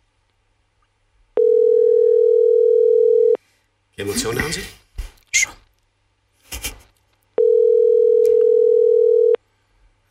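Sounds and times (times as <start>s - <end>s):
telephone ringing tone while waiting for an answer: 1.4s - 3.4s, 7.4s - 9.4s
speech: 4.0s - 4.8s.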